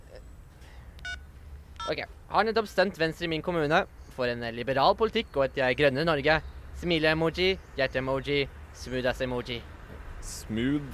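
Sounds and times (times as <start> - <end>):
mobile phone keypad beep: 1.0 - 2.0
speech: 1.9 - 10.9.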